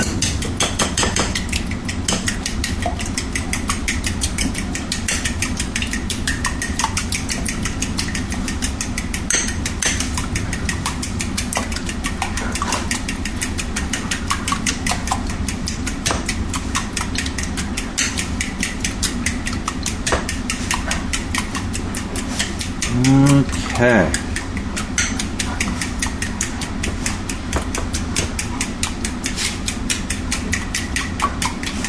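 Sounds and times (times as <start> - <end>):
eggs being scrambled with a fork: 0.0 - 31.8.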